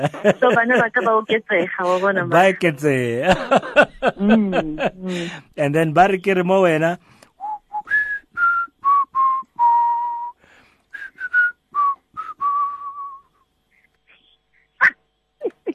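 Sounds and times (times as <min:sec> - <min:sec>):
laughter: 0:00.0 - 0:05.5
speech: 0:00.0 - 0:07.2
person whistling a lively tune: 0:07.4 - 0:13.4.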